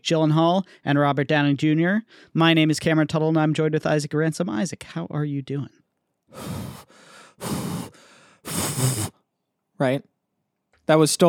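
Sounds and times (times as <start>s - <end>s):
speech: 0.0s - 7.7s, 9.8s - 10.1s, 10.9s - 11.2s
person imitating heavy raspy breathing on the phone: 6.3s - 9.2s.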